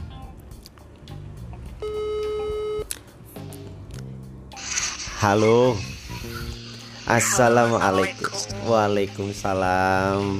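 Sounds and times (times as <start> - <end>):
telephone ringback tone while someone is being called: 1.8 - 2.8
speech: 5.2 - 5.9, 7.1 - 10.3.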